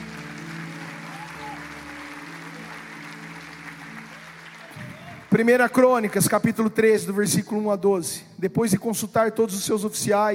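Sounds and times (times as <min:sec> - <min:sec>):
sustained musical tones: 0:00.0 - 0:05.6
audience applauding: 0:00.0 - 0:06.4
speech: 0:05.3 - 0:10.3.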